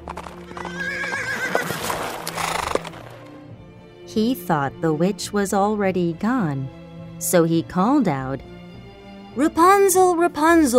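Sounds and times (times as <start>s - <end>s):
horse hooves clopping on a hard surface: 0.0s - 3.3s
horse whinnying: 0.1s - 3.1s
speech: 4.2s - 8.5s, 9.4s - 10.7s.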